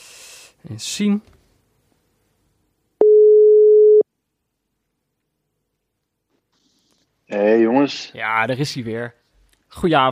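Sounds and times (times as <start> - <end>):
speech: 0.6 - 1.4, 7.3 - 10.1
telephone ringing tone of an outgoing call: 3.0 - 4.0.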